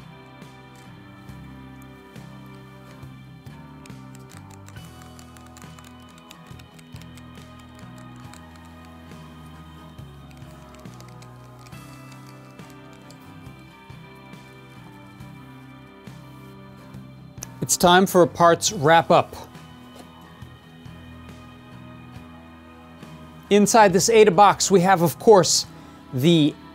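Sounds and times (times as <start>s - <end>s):
steady music: 0.0s - 26.7s
key presses on an Adafruit macro pad mechanical keypad with Kailh box switches: 3.9s - 8.9s
speech: 17.6s - 19.5s, 23.5s - 26.6s.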